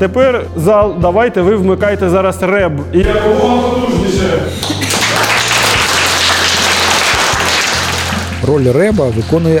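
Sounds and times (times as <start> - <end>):
speech: 0.0 - 4.7, 8.4 - 9.5
roomful of students applauding loudly: 4.6 - 9.5.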